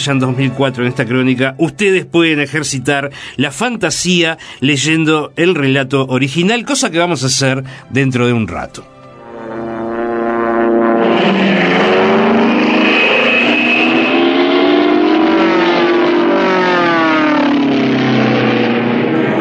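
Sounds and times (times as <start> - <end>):
speech: 0.0 - 9.0
airplane engines droning as aircraft sweep past: 8.9 - 19.4.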